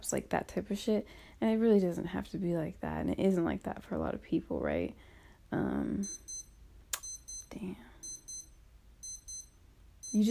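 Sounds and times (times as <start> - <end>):
speech: 0.0 - 6.2, 7.5 - 7.9, 10.1 - 10.3
wristwatch alarm beeping: 6.0 - 10.3.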